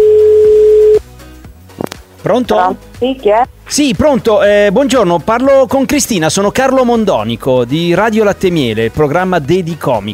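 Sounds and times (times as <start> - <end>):
telephone ringback tone on an outgoing call: 0.0 - 1.0
speech: 2.2 - 10.1.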